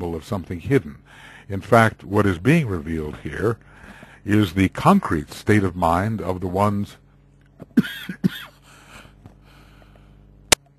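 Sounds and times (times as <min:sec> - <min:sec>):
speech: 0:00.2 - 0:07.0, 0:07.6 - 0:08.5
person coughing harshly: 0:07.6 - 0:08.6.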